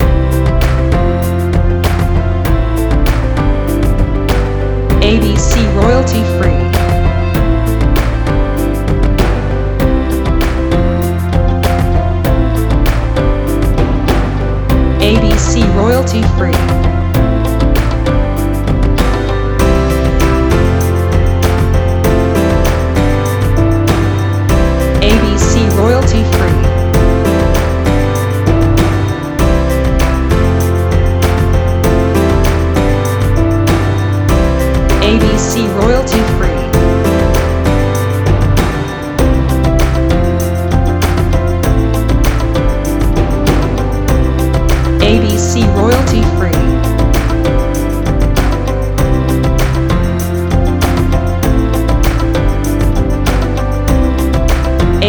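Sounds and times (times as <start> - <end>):
corporate business music loop: 0.0 - 55.0.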